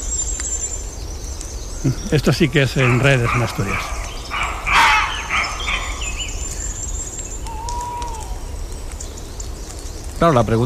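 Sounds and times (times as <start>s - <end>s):
speech: 1.8s - 4.0s, 10.2s - 10.6s
thin whistling bird calls: 1.8s - 8.5s
roe deer barking: 2.0s - 6.6s
fox barking: 2.7s - 6.4s.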